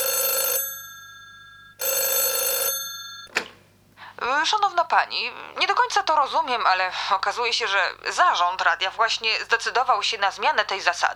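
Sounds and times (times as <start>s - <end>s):
telephone ringing in a home: 0.0s - 3.5s
speech: 4.4s - 11.1s.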